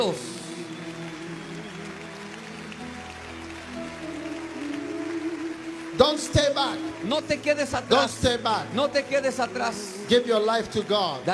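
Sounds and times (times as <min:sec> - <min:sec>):
speech: 0:00.0 - 0:00.4, 0:06.0 - 0:11.3
large crowd clapping: 0:00.0 - 0:11.3
sustained keyboard-like music: 0:00.0 - 0:11.3.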